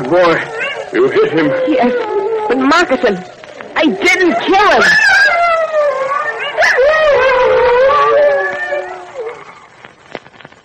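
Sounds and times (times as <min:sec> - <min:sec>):
wolf howling: 0:00.0 - 0:09.8
faint clicks and rustles: 0:00.0 - 0:10.6
speech: 0:00.1 - 0:05.2.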